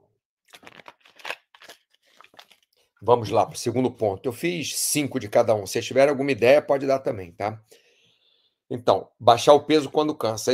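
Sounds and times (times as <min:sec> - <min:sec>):
light plastic crinkling: 0:00.5 - 0:02.9
sipping and gulping water: 0:00.5 - 0:03.5
speech: 0:03.0 - 0:07.8, 0:08.7 - 0:10.5.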